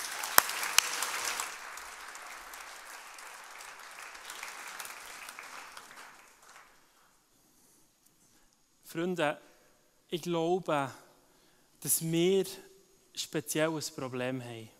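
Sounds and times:
audience clapping: 0:00.0 - 0:07.2
speech: 0:08.9 - 0:09.5, 0:10.1 - 0:11.0, 0:11.8 - 0:14.7.

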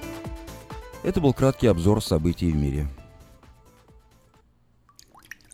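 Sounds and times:
speech: 0:01.0 - 0:03.0
water dripping and gurgling: 0:04.8 - 0:05.5.

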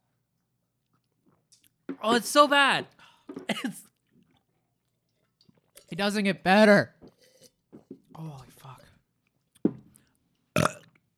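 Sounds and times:
speech: 0:01.9 - 0:03.9, 0:05.9 - 0:07.0
loud burps: 0:10.6 - 0:11.0.

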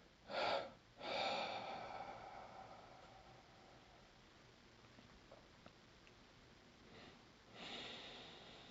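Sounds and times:
quiet breathing in and out: 0:00.0 - 0:04.3, 0:06.8 - 0:08.6.

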